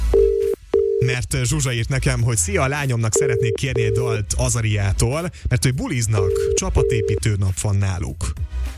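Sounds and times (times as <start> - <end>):
steady electronic telephone tone of an unanswered call: 0.2 - 1.1, 3.2 - 4.2, 6.2 - 7.2
speech: 1.2 - 8.7.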